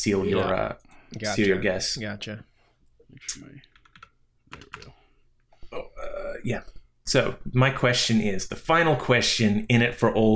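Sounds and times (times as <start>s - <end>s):
speech: 0.0s - 2.5s, 3.1s - 3.7s, 4.5s - 5.0s, 5.7s - 10.3s
computer keyboard key clicks while typing a number: 3.7s - 4.9s.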